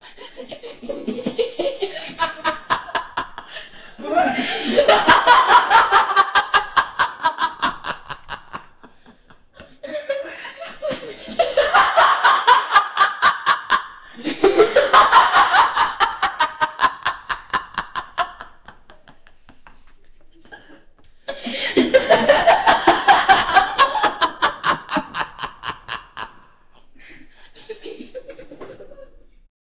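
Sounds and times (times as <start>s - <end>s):
maniacal laughter of a woman in an asylum: 0.0s - 8.9s, 9.8s - 19.3s, 20.4s - 26.4s.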